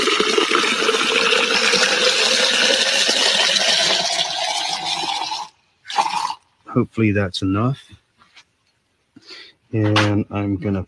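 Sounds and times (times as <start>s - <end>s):
water pouring into a narrow tube: 0.0s - 6.4s
speech: 6.8s - 8.0s, 9.7s - 10.8s.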